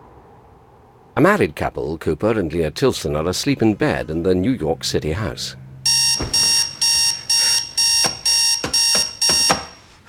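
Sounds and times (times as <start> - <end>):
speech: 1.2 - 6.0
alarm clock ringing in a bedroom: 5.9 - 9.9.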